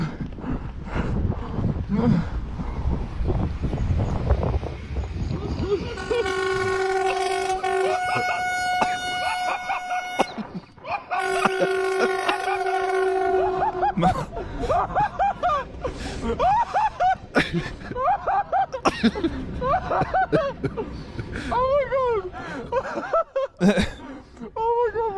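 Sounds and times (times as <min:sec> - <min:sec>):
train rumbling: 0:00.0 - 0:25.1
speech: 0:01.9 - 0:02.4
laughter: 0:05.4 - 0:25.1
multi-tone train horn blaring: 0:05.8 - 0:14.3.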